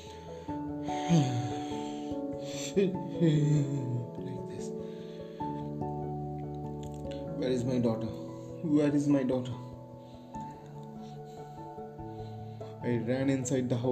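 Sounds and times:
steady droning musical background: 0.0s - 13.9s
person imitating heavy breaths: 0.2s - 4.0s
speech: 1.1s - 1.4s, 2.8s - 4.2s, 7.5s - 9.6s, 12.8s - 13.9s.

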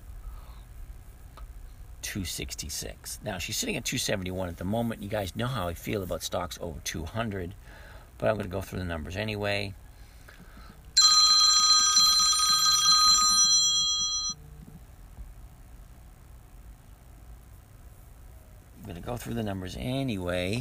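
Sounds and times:
speech: 2.1s - 9.8s, 19.1s - 20.5s
second phone ringing with a bright electronic ringtone: 11.0s - 14.4s.

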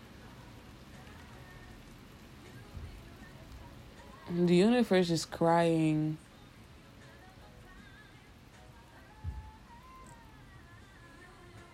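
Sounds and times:
heavy rain drumming on a surface: 0.0s - 7.0s
speech: 4.3s - 6.2s.

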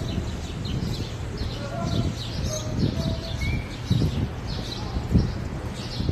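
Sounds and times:
several birds chirping and tweeting in the morning: 0.0s - 6.1s.

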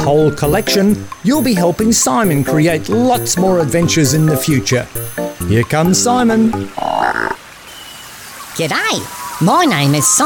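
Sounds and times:
speech: 0.0s - 7.4s, 8.6s - 10.2s
Australian green tree frog croaking: 0.5s - 7.4s.

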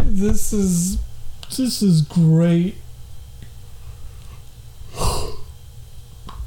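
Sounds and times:
speech: 0.2s - 2.8s
person yawning: 4.9s - 5.5s.

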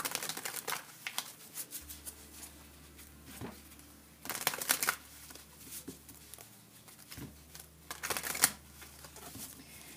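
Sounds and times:
tarot cards being shuffled: 0.0s - 2.1s, 4.2s - 9.6s
faint steady hum: 0.0s - 9.9s.

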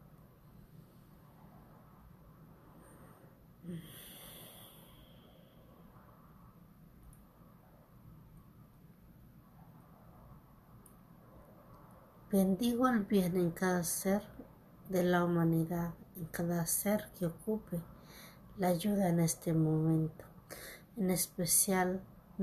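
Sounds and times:
low hum: 0.0s - 22.4s
deep breath: 2.6s - 6.4s, 17.9s - 18.5s, 20.5s - 20.9s
speech: 3.6s - 4.2s, 12.3s - 14.3s, 14.9s - 22.4s.

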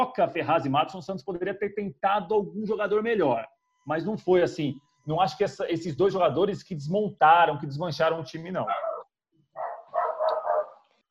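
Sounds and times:
speech: 0.0s - 8.8s
female dog barking: 8.7s - 9.0s, 9.6s - 10.8s.

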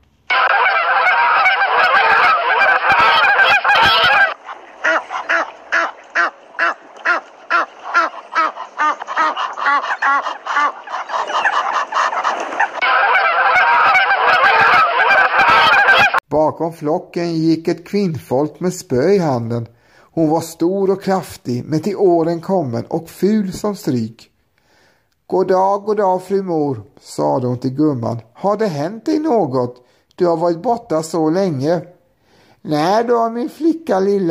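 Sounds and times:
flock of geese honking: 0.3s - 16.2s
speech: 16.6s - 24.3s, 25.3s - 32.0s, 32.6s - 34.2s.

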